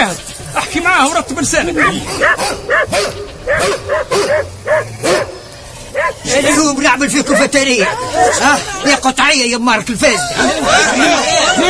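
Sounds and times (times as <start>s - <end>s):
speech: 0.0s - 5.4s, 6.0s - 11.6s
dog barking: 1.8s - 5.4s, 6.0s - 6.7s, 7.3s - 8.5s
laughter: 6.4s - 9.3s, 10.0s - 11.6s.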